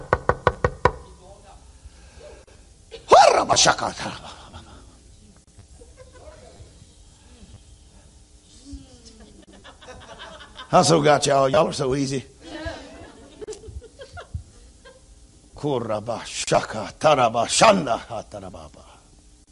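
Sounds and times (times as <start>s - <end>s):
sharp evenly spaced knocks: 0.0s - 1.1s
speech: 3.4s - 4.4s, 10.7s - 12.3s, 15.6s - 18.8s
laughter: 4.0s - 5.0s, 5.8s - 6.6s, 9.0s - 11.0s, 12.4s - 15.1s.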